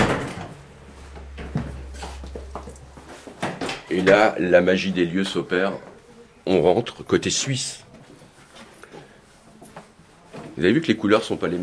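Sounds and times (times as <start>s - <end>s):
door opening and shutting: 0.0s - 2.8s
steady low hum: 0.0s - 5.0s
speech: 3.9s - 7.8s, 10.6s - 11.6s.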